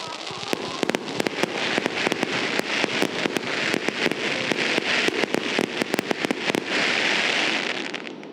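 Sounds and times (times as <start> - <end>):
fireworks exploding at a fireworks display at a ski area: 0.0 - 8.3.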